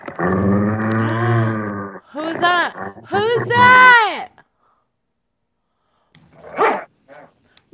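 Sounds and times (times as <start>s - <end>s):
speech: 0.2s - 0.6s, 2.3s - 4.0s
dog barking: 6.5s - 7.3s.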